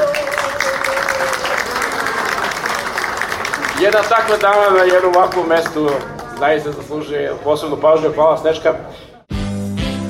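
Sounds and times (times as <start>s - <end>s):
audience applauding a guest singer at a live stage event: 0.0s - 6.8s
speech: 3.8s - 9.0s.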